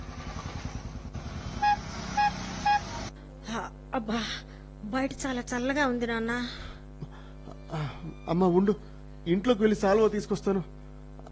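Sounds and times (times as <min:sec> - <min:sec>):
auto rickshaw engine putter: 0:00.0 - 0:03.1
auto rickshaw short horn beeps: 0:01.6 - 0:03.1
speech: 0:04.0 - 0:06.7, 0:07.7 - 0:10.8.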